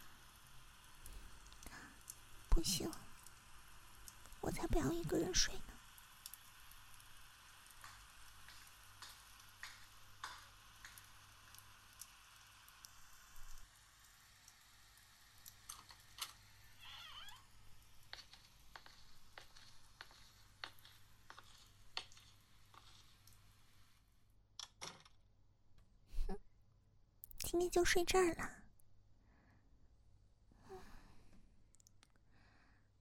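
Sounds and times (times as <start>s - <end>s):
rain falling: 0.0s - 23.9s
speech: 2.6s - 3.0s, 4.4s - 5.7s, 27.7s - 28.6s.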